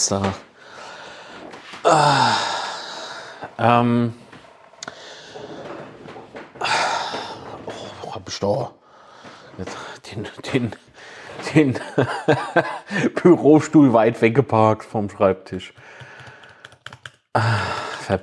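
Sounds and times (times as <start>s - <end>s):
speech: 0.0s - 0.5s, 1.9s - 2.5s, 3.5s - 4.2s, 8.2s - 8.8s, 9.6s - 16.1s, 17.3s - 18.2s
heavy breathing with sighing exhales and gasping intakes: 0.5s - 3.6s, 4.8s - 8.2s, 8.8s - 10.1s, 10.8s - 11.4s, 15.8s - 16.8s, 17.4s - 18.1s.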